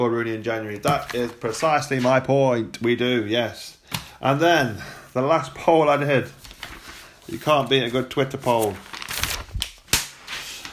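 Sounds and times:
speech: 0.0 - 6.4, 7.3 - 8.9
paper rustling and crinkling: 0.6 - 2.2, 6.1 - 10.7.

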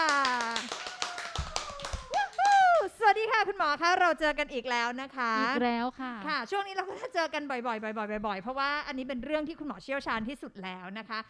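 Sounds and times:
short patter of hand claps welcoming a guest: 0.0 - 2.9
speech: 3.4 - 11.2.

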